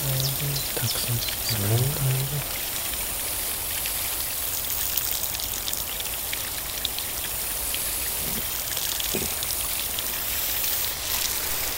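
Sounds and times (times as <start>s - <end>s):
water dripping and splashing onto a surface: 0.0s - 11.7s
speech: 0.8s - 2.6s.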